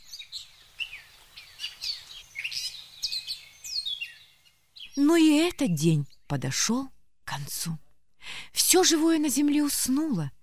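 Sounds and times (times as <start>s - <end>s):
flock of sparrows chirping: 0.0s - 7.6s
speech: 5.0s - 7.8s, 8.6s - 10.4s.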